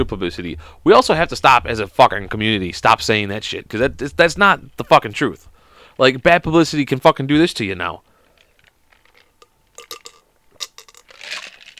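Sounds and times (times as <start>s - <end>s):
speech: 0.0s - 8.1s
ice cubes clinking in a cup of drink: 8.6s - 11.7s
glassy swirl of ice in a cup: 9.8s - 11.7s.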